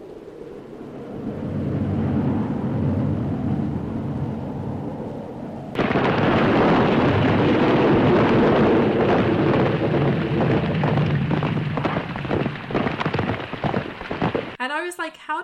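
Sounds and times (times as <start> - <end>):
low rolling thunder: 0.0 - 14.6
heavy steady downpour: 5.8 - 14.6.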